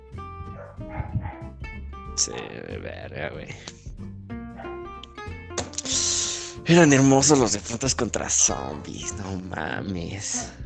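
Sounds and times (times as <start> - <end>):
dog barking: 0.5 - 1.5, 4.6 - 4.8, 8.4 - 9.4, 10.2 - 10.6
speech: 2.2 - 3.8, 6.7 - 10.6.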